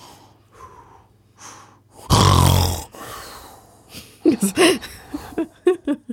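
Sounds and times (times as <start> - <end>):
person imitating a loud rasping snore: 2.0 - 3.0
laughter: 4.2 - 6.1
speech: 4.4 - 4.9.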